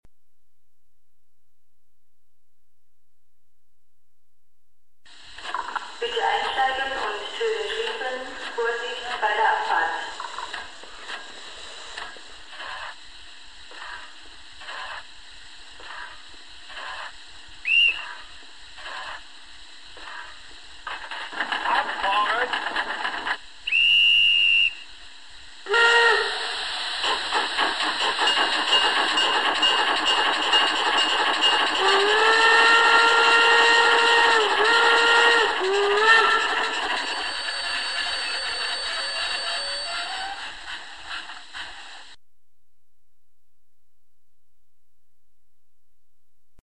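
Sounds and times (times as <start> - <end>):
model steam locomotive: 5.1 - 42.2.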